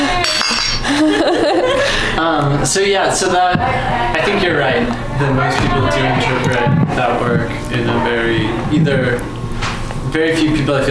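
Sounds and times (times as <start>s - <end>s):
drink glasses clinking in a toast: 0.0s - 0.9s
laughter: 0.0s - 2.6s
speech: 2.3s - 9.4s, 10.1s - 10.8s.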